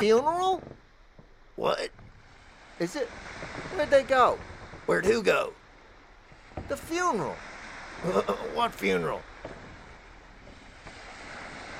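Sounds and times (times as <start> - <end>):
speech: 0.0 - 0.8, 1.6 - 2.0, 2.8 - 5.6, 6.6 - 9.6
waves and moving water surrounding a boat: 0.0 - 11.7.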